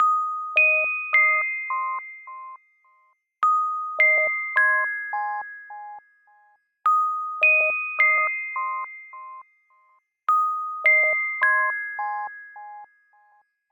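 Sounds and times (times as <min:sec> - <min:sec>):
LG X Screen music box alarm tone: 0:00.0 - 0:13.4.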